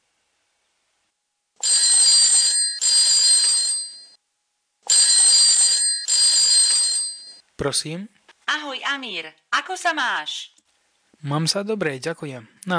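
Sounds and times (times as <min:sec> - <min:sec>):
telephone ringing with a trilling bell tone: 0:01.6 - 0:04.2, 0:04.9 - 0:07.4
speech: 0:07.6 - 0:10.6, 0:11.2 - 0:12.7.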